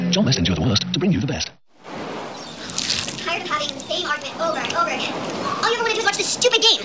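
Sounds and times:
speech: 0:00.2 - 0:01.5, 0:05.0 - 0:06.8
bears splashing in river water at a river mouth catching salmon: 0:01.9 - 0:06.8.

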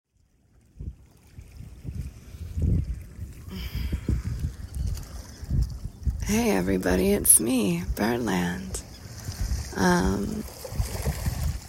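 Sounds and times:
ocean water sloshing and lapping against a pier: 0:00.1 - 0:11.6
speech: 0:06.3 - 0:08.8, 0:09.8 - 0:10.6.

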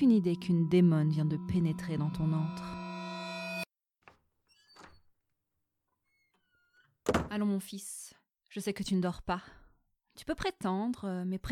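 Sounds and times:
speech: 0:00.0 - 0:02.8, 0:07.1 - 0:09.6, 0:10.2 - 0:11.5
bedroom door creaking slowly open: 0:04.5 - 0:05.1.

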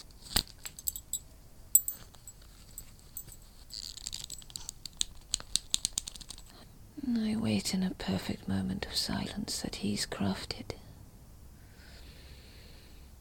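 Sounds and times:
metal clink: 0:00.6 - 0:04.6
leather creaking in grip: 0:03.2 - 0:06.5
speech: 0:07.1 - 0:10.8.

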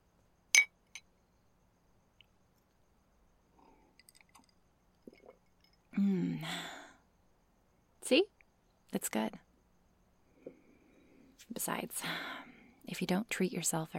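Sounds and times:
glasses clinking in a toast: 0:00.6 - 0:01.0
person gulping: 0:05.0 - 0:05.5
speech: 0:06.0 - 0:06.7, 0:08.1 - 0:08.3, 0:08.9 - 0:09.5, 0:11.5 - 0:13.9.

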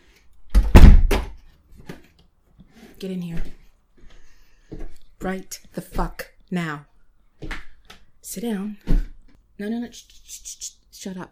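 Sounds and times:
door creaking and shutting with a solid thud and rattle: 0:00.5 - 0:01.4
speech: 0:03.0 - 0:03.6, 0:05.2 - 0:07.5, 0:08.3 - 0:09.0, 0:09.6 - 0:11.3.

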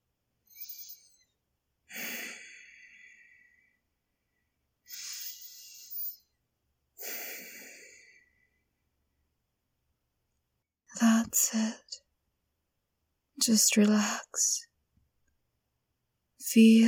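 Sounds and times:
deep breaths: 0:01.9 - 0:05.8, 0:07.0 - 0:08.8
speech: 0:11.3 - 0:11.8, 0:13.5 - 0:14.7, 0:16.5 - 0:16.8.

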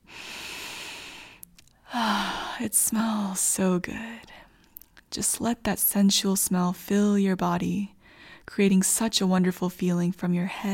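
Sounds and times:
deep breath in: 0:00.0 - 0:02.6
speech: 0:01.9 - 0:04.3, 0:05.2 - 0:10.7.

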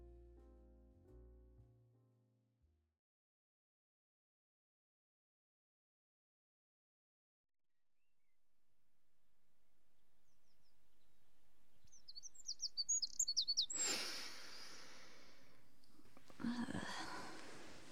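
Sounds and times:
birds twittering outside: 0:09.8 - 0:17.8
soft rush of rustling noise: 0:15.5 - 0:17.8.

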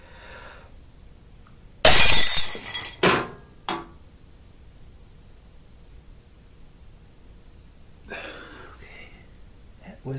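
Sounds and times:
glass breaking with a loud bright crash: 0:01.8 - 0:03.4
glass shards scattering and falling: 0:01.8 - 0:03.4.

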